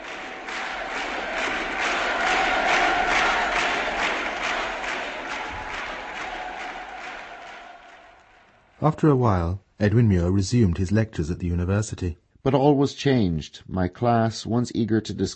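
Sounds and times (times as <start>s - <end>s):
vast crowd shouting in unison: 0.0s - 8.5s
speech: 8.8s - 15.3s.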